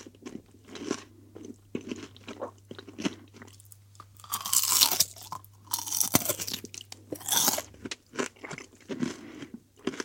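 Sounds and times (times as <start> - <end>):
crisp bacon crunched in bites: 0.0 - 10.0
low steady hum: 0.0 - 10.0.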